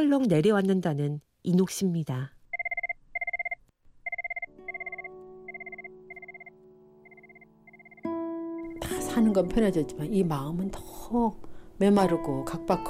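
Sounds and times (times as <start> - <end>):
speech: 0.0 - 2.4, 9.2 - 12.8
telephone ringing in trilling electronic bursts: 2.5 - 6.5, 7.1 - 8.0
soft music: 4.5 - 12.8.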